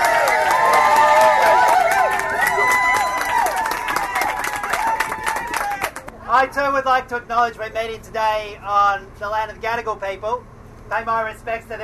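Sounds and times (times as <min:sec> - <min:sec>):
scattered whoops and shouts: 0:00.0 - 0:06.0
large audience clapping: 0:00.0 - 0:06.1
speech: 0:06.5 - 0:11.8.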